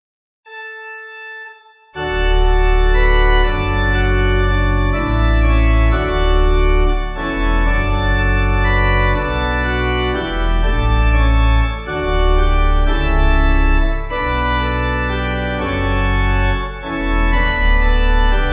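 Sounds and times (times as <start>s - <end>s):
pipe organ hymn: 2.0s - 18.5s.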